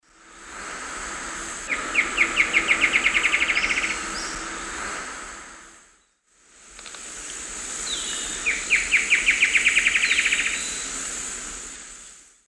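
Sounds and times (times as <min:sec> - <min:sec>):
Herpsilochmus dugandi song in South American eastern lowlands: 0:01.7 - 0:04.5, 0:07.9 - 0:10.9.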